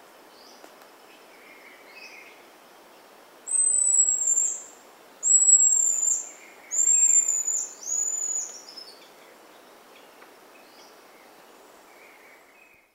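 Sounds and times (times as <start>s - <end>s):
low hiss: 0.0s - 12.9s
Buffy-headed marmoset calling with high whistles: 3.5s - 4.6s, 5.2s - 6.2s, 6.8s - 8.5s.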